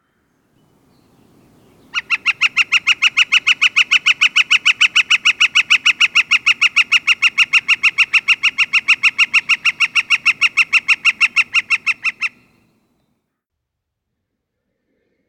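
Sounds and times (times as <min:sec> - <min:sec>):
faint low noise: 0:00.0 - 0:15.2
Northern Flicker rattling call: 0:01.8 - 0:12.6.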